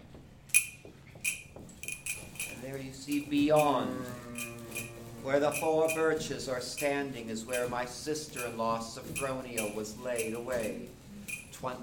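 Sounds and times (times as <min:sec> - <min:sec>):
pass keys to doors jangling: 0:00.5 - 0:03.8, 0:04.4 - 0:06.1, 0:06.8 - 0:11.6
speech: 0:02.6 - 0:04.5, 0:05.2 - 0:11.0, 0:11.6 - 0:11.8.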